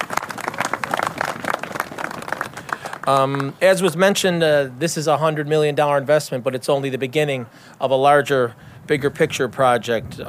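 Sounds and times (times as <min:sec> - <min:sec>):
crowd applauding: 0:00.0 - 0:03.6
speech: 0:03.1 - 0:10.2.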